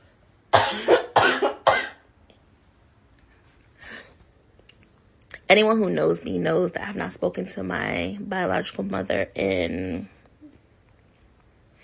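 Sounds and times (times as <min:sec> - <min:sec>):
harsh coughs: 0:00.5 - 0:02.1
speech: 0:05.5 - 0:10.2.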